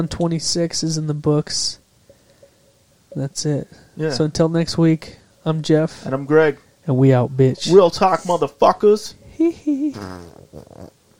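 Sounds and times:
speech: 0.0 - 1.8, 3.1 - 11.0
person blowing a wet buzzing raspberry fart imitation: 9.7 - 11.0.

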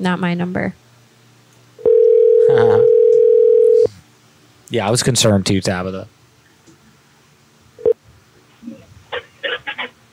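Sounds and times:
speech: 0.0 - 0.8, 2.6 - 3.0, 4.7 - 6.2
telephone dial tone as a call is placed: 1.8 - 3.9.

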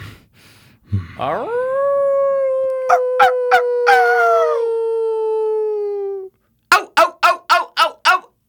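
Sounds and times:
person doing a long loud wolf howl: 1.1 - 8.3
person making short yelping barks: 6.7 - 8.3.

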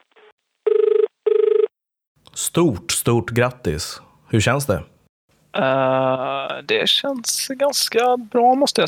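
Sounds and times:
ringback tone of an outgoing telephone call: 0.7 - 1.7
speech: 2.6 - 5.0, 5.6 - 8.8.

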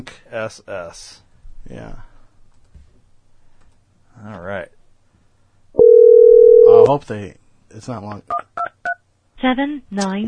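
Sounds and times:
speech: 0.0 - 2.1, 4.2 - 4.8, 6.9 - 8.4, 9.4 - 10.2
telephone keypad dialing beep: 5.8 - 6.9
recorded voice saying the number is not in service: 6.3 - 7.0.

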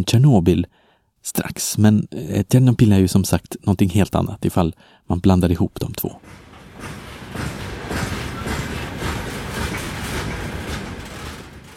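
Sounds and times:
speech: 0.0 - 7.6
train rolling past on the rails after midnight: 6.2 - 11.7.

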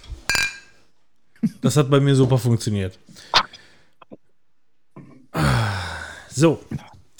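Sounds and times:
glasses clinking together in a toast: 0.3 - 0.8
speech: 1.6 - 3.4, 6.4 - 6.9.

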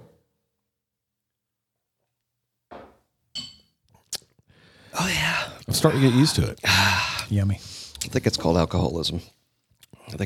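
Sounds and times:
glasses clinking together in a toast: 3.4 - 3.8
speech: 4.9 - 9.4.

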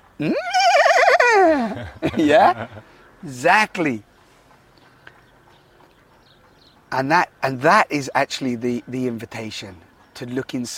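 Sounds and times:
speech: 0.2 - 0.6, 1.4 - 4.1, 6.9 - 10.7
horse neighing: 0.2 - 1.9
laughter: 0.2 - 2.9.

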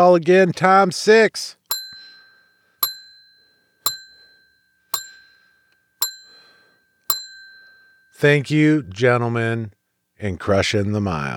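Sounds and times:
speech: 0.0 - 1.6, 8.2 - 11.3
hand bell ringing: 1.7 - 8.2.

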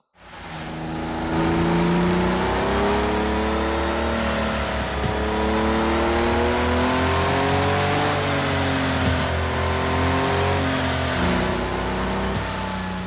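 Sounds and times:
thin high-pitched turbo whine: 0.0 - 13.0
turbocharged car engine revving: 0.2 - 13.0.

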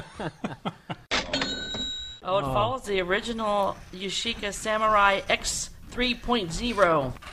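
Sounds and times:
person chuckling: 0.0 - 1.1
speech: 0.2 - 0.8, 2.3 - 7.3
bright ringing cash register ching sound effect: 1.2 - 2.2.

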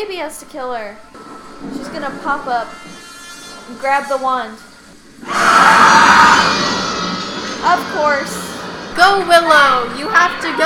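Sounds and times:
speech: 0.0 - 3.0, 3.7 - 6.8, 7.6 - 10.6
woman screaming in a film: 5.2 - 7.2.

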